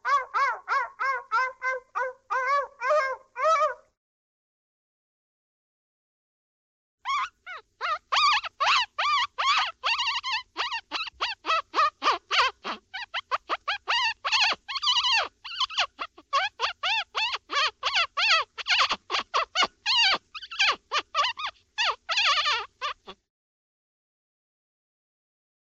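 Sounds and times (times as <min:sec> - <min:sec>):
dog yelping and whining in pain: 0:00.0 - 0:03.9, 0:07.1 - 0:23.2.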